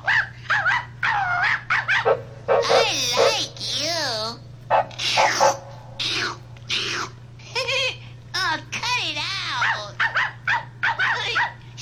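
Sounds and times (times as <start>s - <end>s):
puppy-like dog yapping: 0.0s - 3.7s, 4.7s - 7.2s, 9.6s - 11.7s
faint steady hum: 0.0s - 11.7s.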